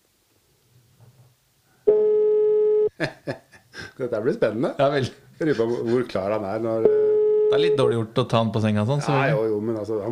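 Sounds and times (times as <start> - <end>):
phone line ringback tone: 1.9 - 2.9, 6.9 - 7.8
laughter: 2.9 - 3.6
speech: 3.0 - 3.4, 4.0 - 10.0.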